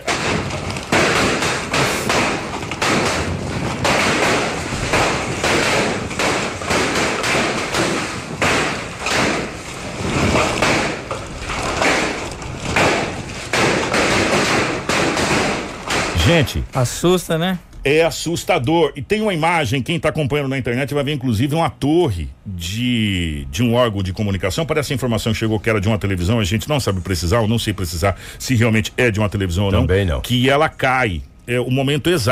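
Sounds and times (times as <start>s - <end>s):
hailstones pelting hard surfaces: 0.0s - 16.5s
speech: 16.3s - 32.3s.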